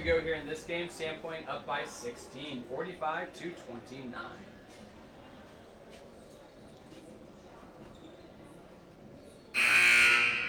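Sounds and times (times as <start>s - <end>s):
speech: 0.0s - 4.6s
loud sustained electronic basketball game buzzer: 9.6s - 10.4s.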